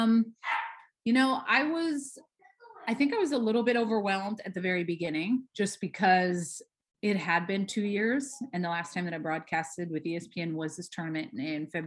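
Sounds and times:
speech: 0.0s - 2.3s, 2.9s - 11.8s
puppy yipping: 0.4s - 0.9s.

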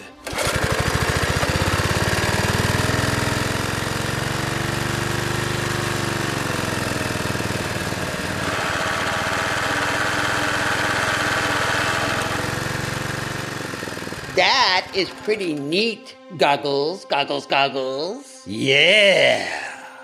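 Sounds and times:
small motor of a motorized surfboard roaring: 0.0s - 15.6s
speech: 14.4s - 19.6s.

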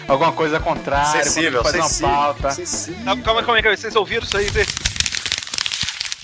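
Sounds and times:
speech: 0.1s - 4.8s
paper being torn up: 4.2s - 6.2s.

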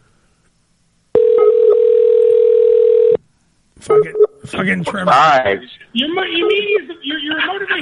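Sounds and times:
outgoing phone call ringing tone: 1.2s - 3.2s
speech: 4.0s - 7.8s.

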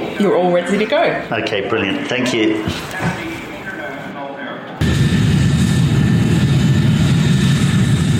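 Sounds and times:
speech: 0.2s - 3.2s
airplane engine roar inside the plane during flight and landing: 4.8s - 8.1s.

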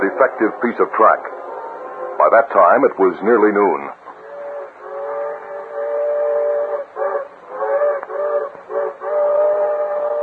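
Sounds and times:
speech: 0.2s - 1.4s, 2.2s - 4.0s
steam locomotive whistle blasts: 4.2s - 10.2s.

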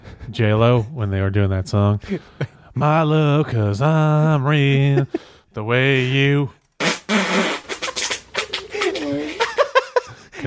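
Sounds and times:
speech: 0.3s - 6.6s
people chuckling: 4.6s - 5.4s, 7.8s - 10.4s
series of loud farts: 6.8s - 9.3s.

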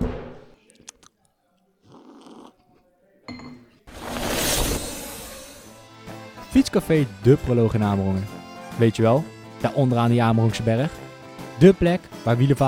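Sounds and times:
slurping rush: 0.6s - 1.2s, 1.8s - 2.8s
mouth sounds: 0.6s - 2.9s
person sipping a drink: 0.6s - 2.9s
speech: 6.6s - 11.0s, 11.6s - 12.6s.

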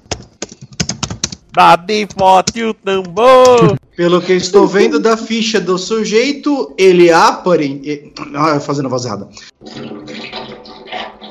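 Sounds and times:
speech: 1.6s - 10.4s
stream of water pouring into a resonant metal container: 9.5s - 11.2s.

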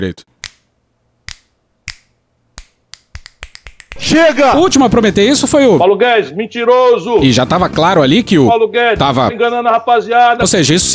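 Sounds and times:
speech: 0.0s - 0.3s, 4.0s - 10.9s
crisp dry finger snaps: 1.3s - 4.0s.

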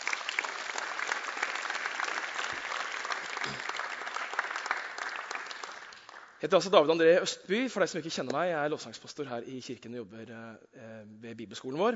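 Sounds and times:
church audience applause: 0.0s - 6.4s
speech: 6.4s - 11.9s.

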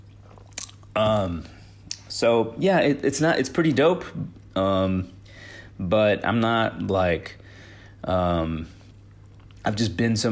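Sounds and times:
person sipping water: 0.0s - 2.0s
speech: 1.0s - 1.6s, 2.2s - 5.2s, 5.8s - 7.4s, 8.0s - 8.8s, 9.6s - 10.3s.

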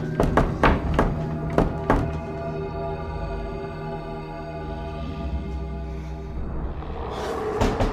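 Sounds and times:
loud heavy knocking on a door: 0.1s - 2.2s
sustained ominous droning tone: 2.2s - 7.9s.

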